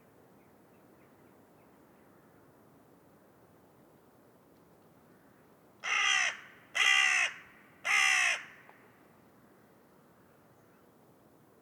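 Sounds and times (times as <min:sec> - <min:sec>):
carrion crow Corvus corone rasping caws: 0:05.8 - 0:08.7.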